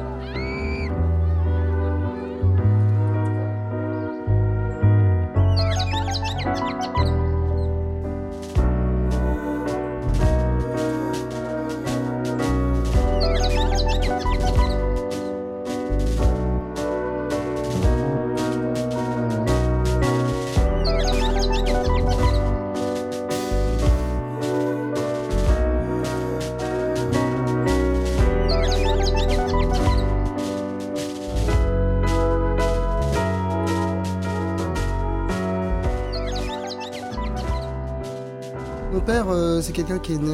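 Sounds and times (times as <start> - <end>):
instrumental music: 0.0 - 40.3
blackbirds and doves chirping: 5.4 - 7.8, 13.0 - 15.4, 19.0 - 22.7, 28.2 - 30.3, 35.8 - 37.8
speech: 39.7 - 40.3.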